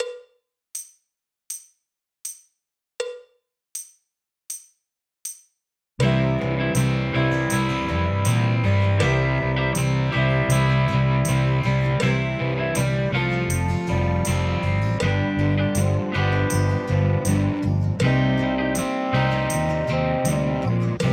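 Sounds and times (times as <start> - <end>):
drum kit: 6.0 - 21.1.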